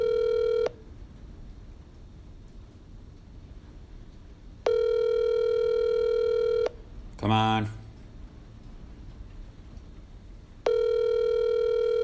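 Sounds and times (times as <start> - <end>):
phone line ringing through the receiver: 0.0 - 0.8, 4.6 - 6.8, 10.6 - 12.0
speech: 7.2 - 7.8.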